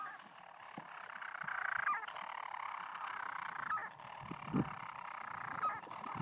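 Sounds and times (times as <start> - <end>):
European storm petrel purring song from the walls of a broch on Mousa, Shetland: 0.0 - 6.2.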